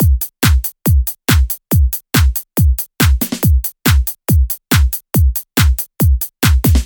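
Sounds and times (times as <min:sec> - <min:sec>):
house music: 0:00.0 - 0:06.8.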